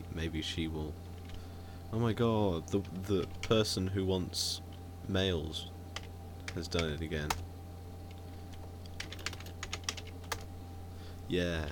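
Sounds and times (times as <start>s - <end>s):
steady low hum: 0.0s - 11.6s
speech: 0.2s - 1.1s, 1.9s - 5.8s, 6.6s - 7.5s, 11.3s - 11.6s
typing on a computer keyboard: 8.9s - 10.5s.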